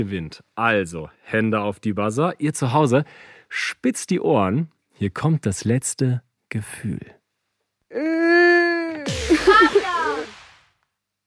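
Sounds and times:
speech: 0.0 - 7.2
person crying sadly with wailing and sobs: 7.9 - 10.1.

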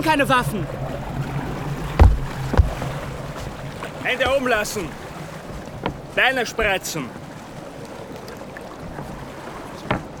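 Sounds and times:
speech: 0.0 - 0.8, 4.0 - 5.0, 6.2 - 7.2
water lapping around a small boat: 0.0 - 10.1
knock of a police officer stepping aboard a boat: 2.0 - 7.0, 9.8 - 10.1.

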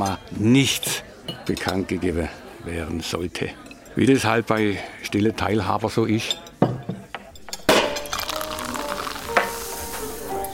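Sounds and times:
speech: 0.0 - 6.4
glasses clinking in a toast: 6.6 - 10.5.

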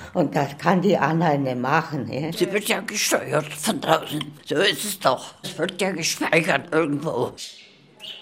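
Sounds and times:
speech: 0.1 - 8.1
budgerigars chirping in a cage: 7.5 - 8.1.

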